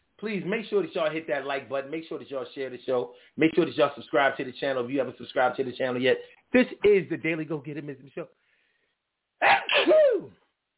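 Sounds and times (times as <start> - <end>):
speech: 0.2 - 8.4, 9.4 - 10.4
person sneezing: 9.4 - 10.4.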